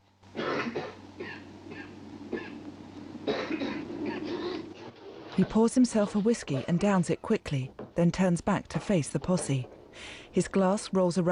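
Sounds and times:
low steady hum: 0:00.0 - 0:11.3
gang member coughing and clearing throat in a bar: 0:00.4 - 0:02.6, 0:03.2 - 0:04.7
speech: 0:05.4 - 0:11.3.

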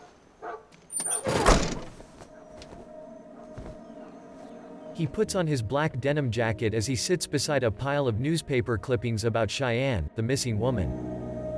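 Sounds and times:
van door being shut: 0:01.1 - 0:02.0
speech: 0:05.0 - 0:11.1.

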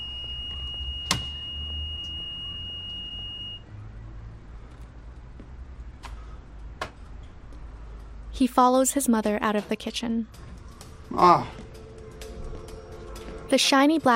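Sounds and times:
smoke detector screeching in a kitchen after a pan fire: 0:00.0 - 0:03.6
speech: 0:08.4 - 0:10.5, 0:11.2 - 0:11.6, 0:13.5 - 0:14.1.

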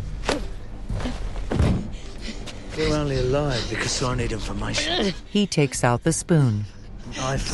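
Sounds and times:
man shoved against a door: 0:00.2 - 0:01.9
speech: 0:03.3 - 0:07.5.

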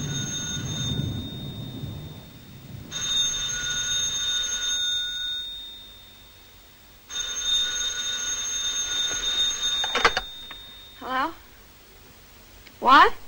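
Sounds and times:
steady low rumble: 0:00.0 - 0:04.4
bedside telephone ringing: 0:00.0 - 0:11.1.

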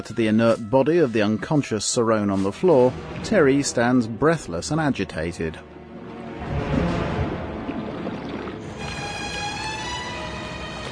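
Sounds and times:
speech: 0:00.0 - 0:05.8
boat moving upriver with churning and sloshing wash: 0:05.8 - 0:10.9.

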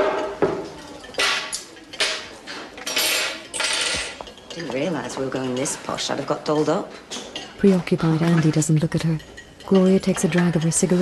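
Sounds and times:
cutlery and a vinegar bottle thrown down onto a table by a waitress: 0:01.2 - 0:04.2
speech: 0:04.8 - 0:11.0.

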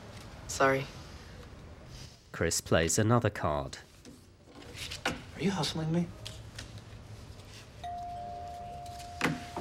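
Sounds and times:
speech: 0:00.6 - 0:01.0, 0:02.4 - 0:03.9, 0:04.8 - 0:06.2
doorbell ringing as a single electronic tone: 0:07.8 - 0:09.6.

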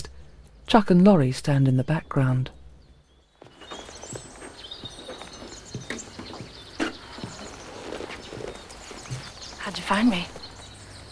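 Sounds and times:
speech: 0:00.7 - 0:02.6, 0:09.9 - 0:10.4
faint rustling: 0:03.3 - 0:11.1
horse cantering through woodland: 0:03.4 - 0:10.8.

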